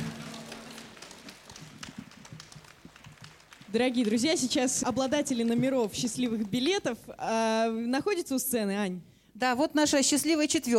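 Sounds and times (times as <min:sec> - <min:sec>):
audience applauding a vocal ensemble: 0:00.0 - 0:06.7
speech: 0:03.7 - 0:10.7.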